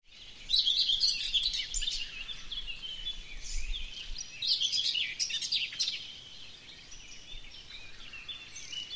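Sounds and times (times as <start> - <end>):
whinchat warbling song of thin whistles and rasping notes: 0.1 - 8.9.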